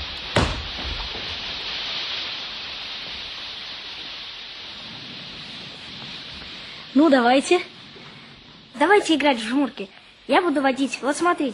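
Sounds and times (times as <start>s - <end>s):
sharp thud or clatter: 0.0s - 1.4s
steady rain pouring down: 0.0s - 11.5s
speech: 6.9s - 7.7s, 8.8s - 11.5s.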